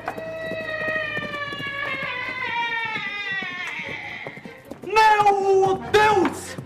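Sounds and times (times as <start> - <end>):
horse hooves galloping: 0.0 - 6.6.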